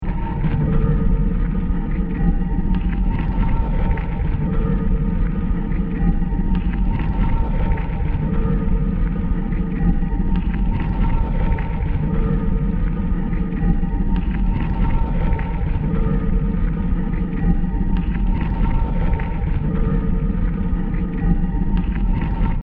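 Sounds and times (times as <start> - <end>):
moving ground texture: 0.0 - 22.6.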